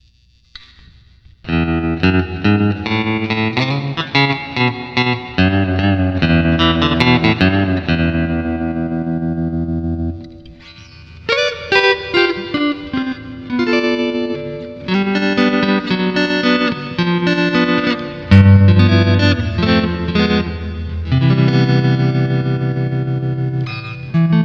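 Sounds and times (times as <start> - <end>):
tremolo effect from a multi-effects processor: 1.5 - 24.4.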